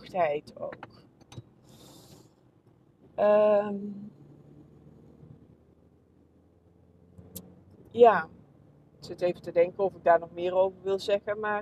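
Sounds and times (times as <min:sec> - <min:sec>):
car driving in traffic heard from inside: 0:00.0 - 0:11.6
speech: 0:00.1 - 0:01.0, 0:03.2 - 0:04.2, 0:07.9 - 0:08.4, 0:09.0 - 0:11.6
road noise hiss: 0:00.8 - 0:09.2.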